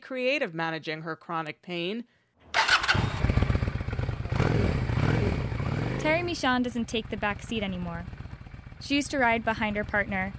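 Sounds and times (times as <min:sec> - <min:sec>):
speech: 0:00.1 - 0:02.2, 0:06.0 - 0:08.2, 0:08.8 - 0:10.3
Honda Shadow cruiser motorcycle engine starting, idling and revving: 0:02.5 - 0:10.3.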